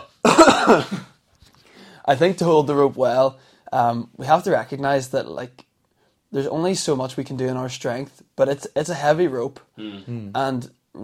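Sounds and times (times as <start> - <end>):
single forceful cough: 0.0 - 1.2
speech: 0.7 - 1.1, 2.1 - 5.7, 6.3 - 11.0.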